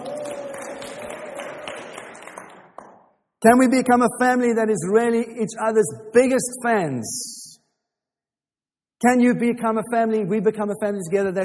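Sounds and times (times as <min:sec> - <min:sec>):
high held shout: 0:00.0 - 0:02.0
crowd clapping and cheering: 0:00.0 - 0:03.1
speech: 0:03.4 - 0:07.4, 0:09.0 - 0:11.4.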